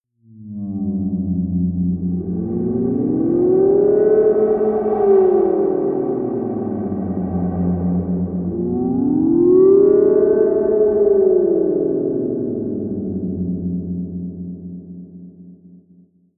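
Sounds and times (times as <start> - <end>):
deep swaying drone: 0.4 - 15.5.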